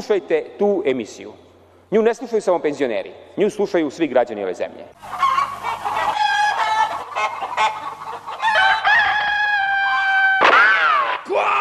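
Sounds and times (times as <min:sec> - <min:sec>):
speech: 0:00.0 - 0:05.3
chicken squawking and clucking: 0:05.0 - 0:10.2
rooster crowing: 0:05.1 - 0:11.1.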